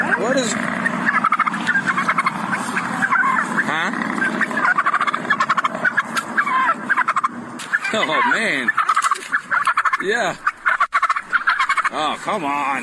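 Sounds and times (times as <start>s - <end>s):
steady low rumble: 0.0s - 12.8s
turkey gobbling during traffic stop: 0.0s - 12.8s
speech: 0.3s - 1.0s, 7.9s - 8.8s, 10.0s - 10.5s, 11.9s - 12.8s.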